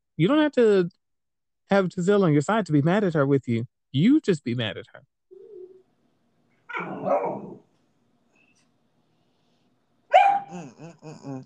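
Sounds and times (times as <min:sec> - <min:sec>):
speech: 0:00.2 - 0:01.0, 0:01.7 - 0:05.1, 0:10.5 - 0:11.4
dog barking: 0:06.7 - 0:07.6, 0:10.1 - 0:10.8.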